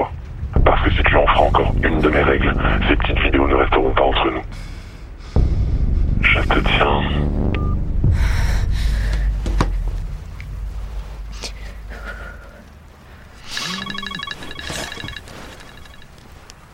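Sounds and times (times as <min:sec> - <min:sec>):
low rumbling: 0:00.0 - 0:16.7
speech: 0:01.4 - 0:04.7, 0:06.2 - 0:07.4
mobile phone electronic melodic ringtone: 0:13.5 - 0:16.1
handling noises: 0:13.5 - 0:16.7.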